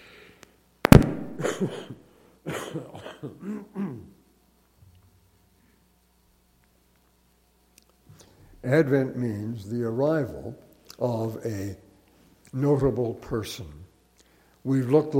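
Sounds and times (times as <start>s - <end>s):
faint low hum: 0.0s - 15.1s
person coughing in a fit: 1.4s - 4.2s
speech: 1.6s - 4.0s, 8.6s - 11.8s, 12.5s - 13.8s, 14.6s - 15.1s.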